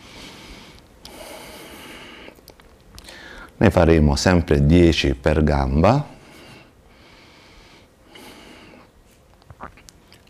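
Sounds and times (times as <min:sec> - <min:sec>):
heavy exercise breathing during leg workout repetitions: 0:00.0 - 0:02.4, 0:03.0 - 0:03.6, 0:06.1 - 0:09.0
speech: 0:03.6 - 0:06.1.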